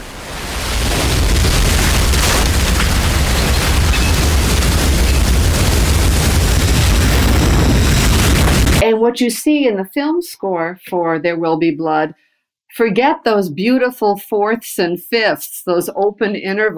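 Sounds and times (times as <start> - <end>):
exploding oil rig and burning oil tower roaring: 0.0 - 8.8
speech: 8.9 - 16.7.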